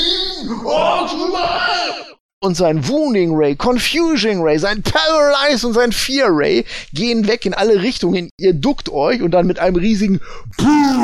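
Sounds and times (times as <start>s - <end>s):
person voicing a monster's anguished scream of pain: 0.0s - 2.2s, 10.6s - 11.0s
speech: 0.4s - 11.0s.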